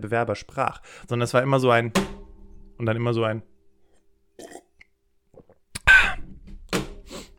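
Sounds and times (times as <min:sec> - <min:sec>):
speech: 0:00.0 - 0:02.2, 0:02.8 - 0:03.5
thud: 0:01.9 - 0:02.6
soft mouth noises: 0:05.3 - 0:06.4.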